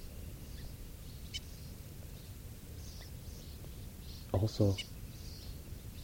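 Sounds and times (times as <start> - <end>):
small bird giving alarm calls at a hawk: 0.0 - 6.0
speech: 4.3 - 5.0.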